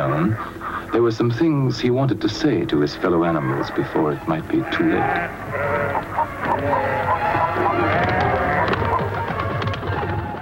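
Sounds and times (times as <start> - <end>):
flock of chickens clucking: 0.0 - 10.4
speech: 0.2 - 6.0, 6.6 - 7.1
pigeons fluttering in the rafters: 6.0 - 10.4.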